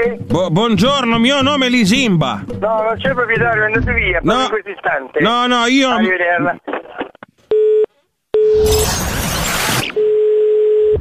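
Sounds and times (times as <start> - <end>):
speech: 0.0 - 7.1
loud crackling noise on the phone line: 8.7 - 10.0
telephone busy tone after call hung up: 10.0 - 10.9.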